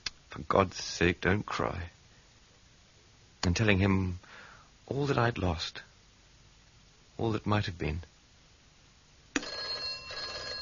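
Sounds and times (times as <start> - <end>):
speech: 0.4 - 2.0, 3.4 - 5.9, 7.2 - 8.1
telephone bell ringing: 9.4 - 10.5.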